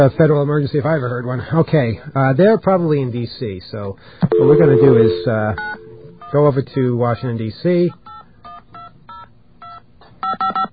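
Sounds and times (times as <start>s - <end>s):
speech: 0.0s - 8.0s
touch-tone telephone keypad beeps as a number is dialed: 4.3s - 6.0s.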